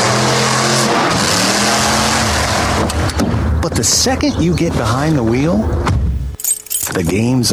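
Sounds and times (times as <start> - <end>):
monster truck engine revving: 0.0 - 3.2
speech: 3.8 - 6.0, 6.9 - 7.5.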